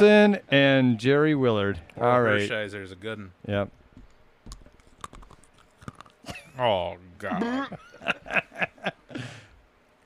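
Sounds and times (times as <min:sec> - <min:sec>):
speech: 0:00.0 - 0:03.8, 0:06.3 - 0:09.4
person chewing stiff 20-year-old gum from a pack of baseball cards: 0:04.5 - 0:06.2
laughter: 0:07.3 - 0:09.3.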